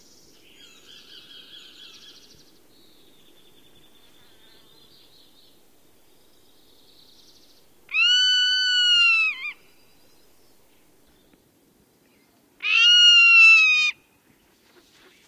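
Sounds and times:
Zone-tailed hawk screaming nasal whistles: 7.9s - 9.6s, 12.6s - 14.0s.

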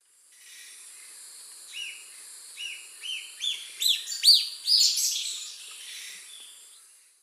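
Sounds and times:
Pipra erythrocephala calling in Eastern Lowlands of South America: 2.6s - 6.8s.

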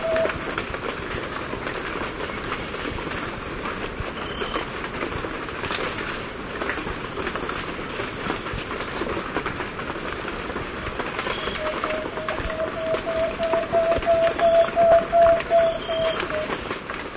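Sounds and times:
plain-backed antpitta singing whistled notes in Ecuador: 0.0s - 0.4s, 11.3s - 16.6s
background noise: 0.0s - 17.1s.

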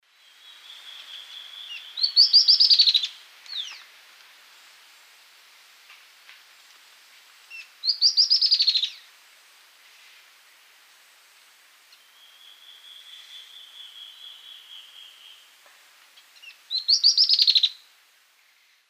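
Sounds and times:
Microrhopias quixensis singing in South American eastern lowlands: 0.2s - 3.8s, 7.5s - 9.1s, 11.9s - 15.6s, 16.2s - 17.9s.

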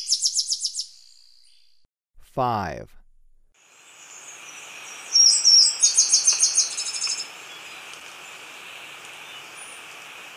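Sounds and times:
tricolored brush-finch song in Ecuador: 0.0s - 1.8s, 3.9s - 10.1s
speech: 2.4s - 3.0s.

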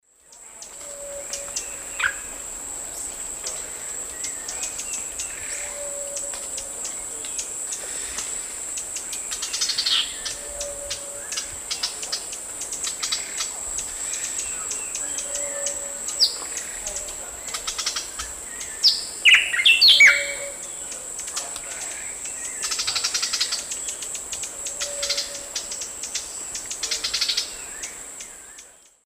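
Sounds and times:
Cantorchilus leucotis singing: 0.1s - 29.0s
Cantorchilus leucotis calling: 4.1s - 13.5s, 14.1s - 28.4s.

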